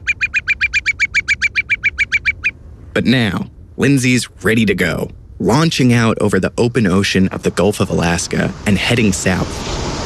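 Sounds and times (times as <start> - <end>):
whimbrel call: 0.0 - 2.6
speech: 3.0 - 9.9.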